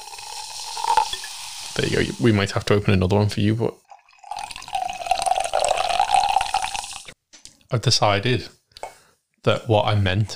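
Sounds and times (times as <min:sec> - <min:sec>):
tonic water pouring from a bottle and spilling over: 0:00.0 - 0:02.2, 0:03.8 - 0:07.2
speech: 0:01.8 - 0:03.8, 0:07.7 - 0:08.6, 0:09.4 - 0:10.3.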